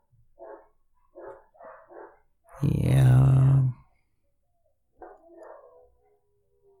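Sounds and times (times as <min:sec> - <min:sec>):
dogs barking: 0:00.4 - 0:02.3, 0:05.0 - 0:06.0
speech: 0:02.6 - 0:03.4.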